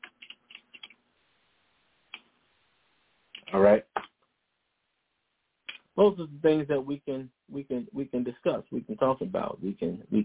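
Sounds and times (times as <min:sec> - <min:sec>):
keyboard keystrokes: 0:00.0 - 0:01.0
speech: 0:03.5 - 0:03.9, 0:06.0 - 0:10.2.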